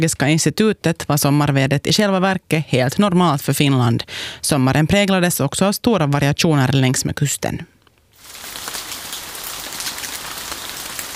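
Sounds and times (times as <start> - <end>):
speech: 0.0 - 7.8
summer rain pattering on a hard surface in Lovisa Finland: 8.1 - 11.1.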